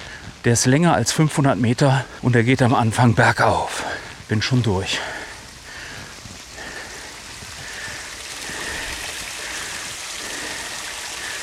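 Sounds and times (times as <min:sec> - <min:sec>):
speech: 0:00.4 - 0:05.2
fountain water running over moss into a drain on the ground: 0:04.2 - 0:11.4.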